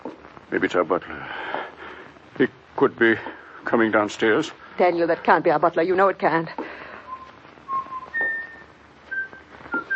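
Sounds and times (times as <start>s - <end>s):
speech: 0.5s - 1.6s, 2.4s - 6.6s
person whistling a simple tune: 7.0s - 9.9s.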